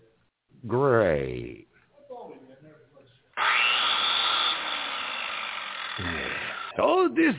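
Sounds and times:
speech: 0:00.6 - 0:01.7, 0:06.8 - 0:07.3
chainsaw running with a harsh buzzing whine: 0:03.4 - 0:06.8.

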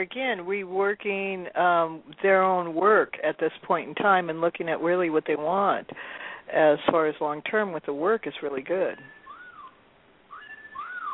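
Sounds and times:
speech: 0:00.0 - 0:09.2
cell phone whistle message alert tone: 0:10.3 - 0:11.1.

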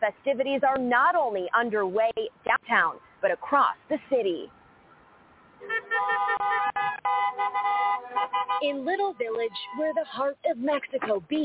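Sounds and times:
speech: 0:00.0 - 0:04.6, 0:05.6 - 0:11.4
noise: 0:00.0 - 0:11.4
car horns honking in a street: 0:05.6 - 0:11.0.

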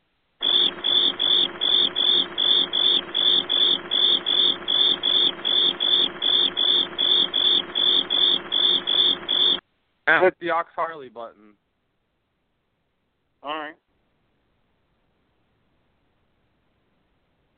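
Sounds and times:
cricket chirping: 0:00.4 - 0:09.6
speech: 0:10.2 - 0:11.4, 0:13.4 - 0:13.8.

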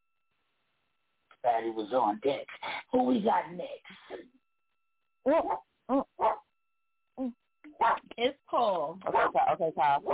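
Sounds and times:
speech: 0:01.4 - 0:04.4, 0:05.2 - 0:06.3, 0:07.2 - 0:10.1
dog barking: 0:05.3 - 0:06.5, 0:07.8 - 0:08.1, 0:09.0 - 0:10.1.

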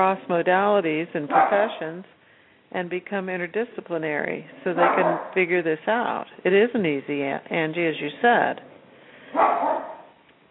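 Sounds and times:
speech: 0:00.0 - 0:08.7, 0:09.3 - 0:09.8
small dog barking over a phone line: 0:01.3 - 0:01.8, 0:04.8 - 0:05.4, 0:09.3 - 0:10.2.

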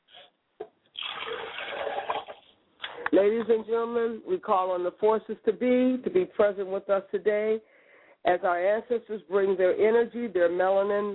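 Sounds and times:
liquid poured out as a libation: 0:00.9 - 0:02.6
speech: 0:03.2 - 0:11.1.

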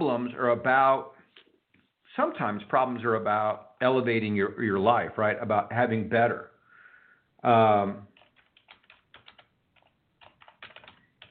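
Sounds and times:
speech: 0:00.0 - 0:01.2, 0:02.2 - 0:06.5, 0:07.4 - 0:08.1
typing on a computer keyboard: 0:08.1 - 0:11.3.

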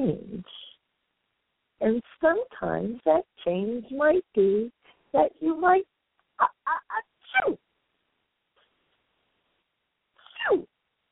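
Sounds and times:
speech: 0:00.0 - 0:00.3, 0:01.8 - 0:07.6, 0:10.5 - 0:10.7
sneeze: 0:07.2 - 0:07.6, 0:10.2 - 0:10.7.

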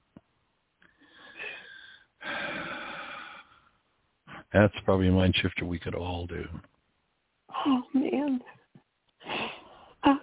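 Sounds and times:
deep breathing: 0:00.8 - 0:04.5
speech: 0:04.5 - 0:06.8, 0:07.6 - 0:08.6.

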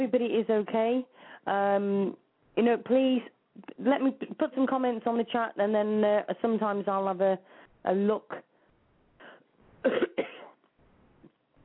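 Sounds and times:
speech: 0:00.0 - 0:08.5, 0:09.8 - 0:10.3
person with a tickling throat coughing: 0:09.8 - 0:10.6.

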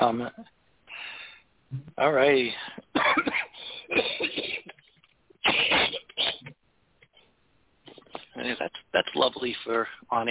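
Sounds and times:
speech: 0:00.0 - 0:00.6, 0:01.7 - 0:04.5, 0:08.4 - 0:10.3
person coughing to clear phlegm from throat: 0:02.8 - 0:06.6.

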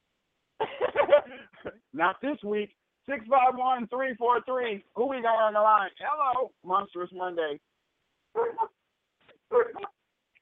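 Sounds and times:
speech: 0:02.0 - 0:07.7
dogs barking over a phone line: 0:08.3 - 0:08.8.

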